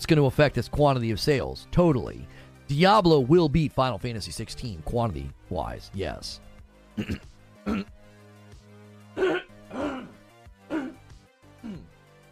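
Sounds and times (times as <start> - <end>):
speech: 0.0 - 8.0, 9.2 - 9.4
person clearing throat: 7.0 - 7.9, 9.2 - 11.0, 11.6 - 11.9.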